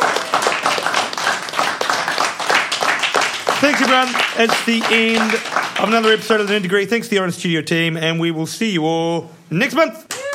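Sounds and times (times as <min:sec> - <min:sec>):
crowd applause: 0:00.0 - 0:06.7
speech: 0:03.8 - 0:10.1.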